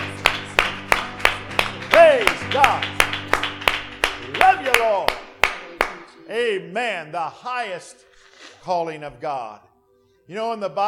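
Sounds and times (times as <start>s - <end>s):
audience clapping hands in a steady unison rhythm: 0.0s - 6.2s
speech: 2.0s - 3.0s, 6.3s - 9.7s, 10.3s - 10.8s.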